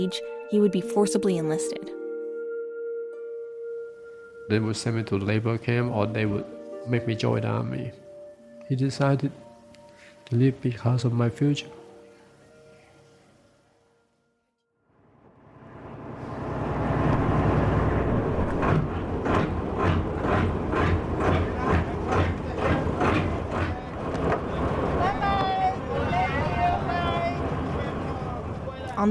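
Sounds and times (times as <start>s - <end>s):
speech: 0.0s - 2.0s, 4.5s - 8.0s, 8.7s - 9.4s, 10.3s - 11.8s
boat engine droning while crossing the ocean: 15.0s - 29.0s
regular thudding beats: 17.0s - 25.0s
indistinct voices: 18.6s - 29.0s.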